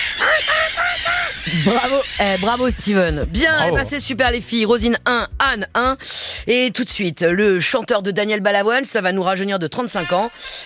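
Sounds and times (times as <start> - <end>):
person imitating seagull cries: 0.1 - 2.6
speech: 1.5 - 10.6.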